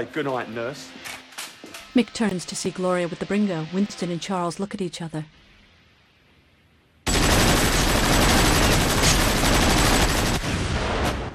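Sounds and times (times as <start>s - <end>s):
speech: 0.0s - 1.2s, 2.0s - 5.4s
machine gun fire sprayed around a room: 7.1s - 11.2s.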